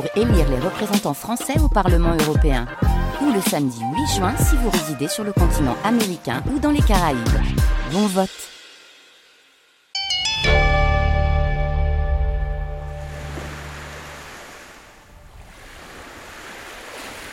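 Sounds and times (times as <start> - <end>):
speech: 0.0 - 8.5
bright sustained chime-like tones: 10.0 - 11.9
surf washing up and drawing back on a shore: 12.9 - 17.3.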